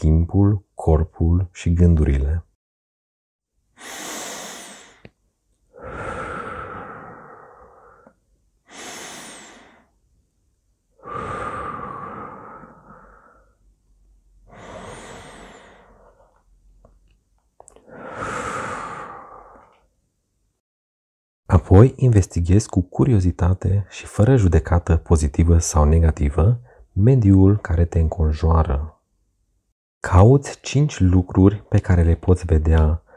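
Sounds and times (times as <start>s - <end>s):
speech: 0.0s - 2.5s, 21.7s - 29.0s, 30.0s - 33.0s
slow deep breaths as a calming exercise: 3.8s - 10.0s, 10.9s - 13.7s, 14.4s - 16.5s, 17.7s - 19.9s, 33.0s - 33.1s.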